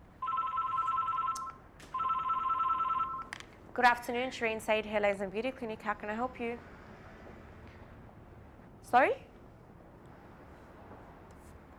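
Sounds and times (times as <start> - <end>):
telephone ringing at a hair, laser and beauty clinic: 0.2 - 3.3
speech: 3.8 - 6.7, 8.9 - 9.3.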